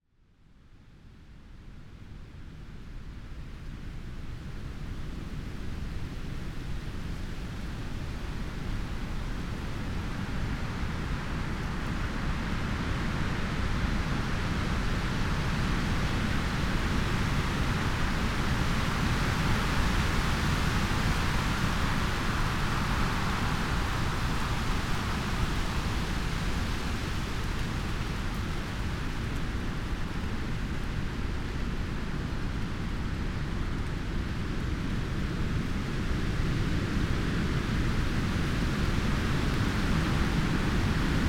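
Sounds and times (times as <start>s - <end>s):
autumn night wind: 0.0s - 41.2s.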